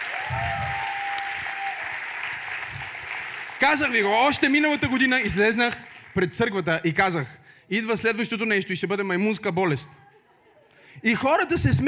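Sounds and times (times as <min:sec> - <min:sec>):
congregation applauding in a church during a sermon: 0:00.0 - 0:06.7
speech: 0:03.6 - 0:10.0, 0:11.0 - 0:11.8.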